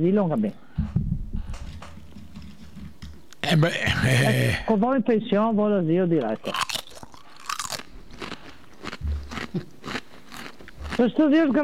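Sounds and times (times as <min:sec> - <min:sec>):
speech: 0:00.0 - 0:01.0, 0:03.4 - 0:06.7, 0:11.0 - 0:11.6
potato chip being bitten and chewed: 0:06.2 - 0:11.6.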